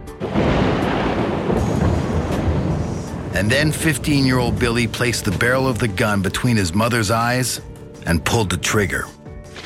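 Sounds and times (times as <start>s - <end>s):
rolling thunder: 0.1s - 5.8s
heavy rain: 0.2s - 5.2s
speech: 3.4s - 9.2s.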